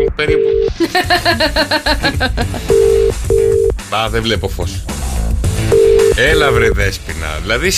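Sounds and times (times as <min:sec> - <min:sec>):
speech: 0:00.2 - 0:02.4, 0:04.0 - 0:05.0, 0:06.2 - 0:07.7
laughter: 0:00.8 - 0:02.7
electronic phone beeps: 0:02.7 - 0:03.8, 0:05.7 - 0:06.8
steady sustained ringback tone of an outgoing call: 0:02.7 - 0:03.8, 0:05.7 - 0:06.7.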